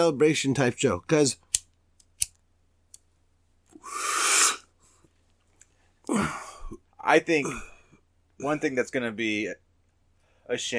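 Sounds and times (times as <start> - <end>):
speech: 0.0 - 1.4, 7.0 - 7.7, 8.4 - 9.6, 10.5 - 10.7
lighter clicks lighting a smoke: 1.5 - 3.0
breathy hiss of lighting up a smoke: 3.8 - 5.0.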